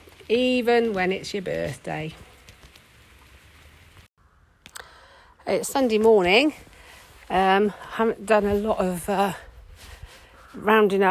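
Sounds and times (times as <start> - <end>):
sharper drips and splashes: 0.0 - 4.1
steady rain pattering outside: 0.0 - 4.1
speech: 0.3 - 2.3, 5.5 - 6.7, 7.3 - 9.5, 10.6 - 11.0.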